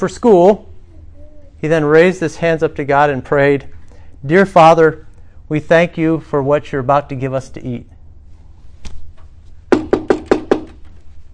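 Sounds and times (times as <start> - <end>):
speech: 0.0 - 0.7, 1.6 - 7.9
knocking on a door: 9.7 - 10.8.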